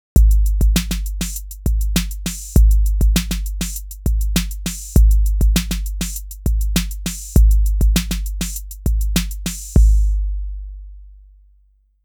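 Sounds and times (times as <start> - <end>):
808 drum machine on tape: 0.2 - 10.3.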